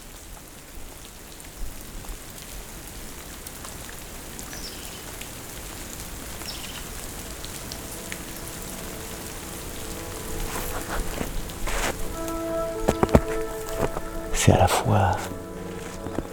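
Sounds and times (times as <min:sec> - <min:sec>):
water droplets dripping onto leaves and ground in a fir forest: 0:00.3 - 0:14.4, 0:15.1 - 0:16.3
speech: 0:14.4 - 0:15.4.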